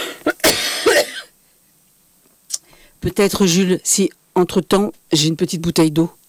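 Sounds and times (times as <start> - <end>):
person coughing: 0.0 - 1.4
speech: 3.0 - 6.2.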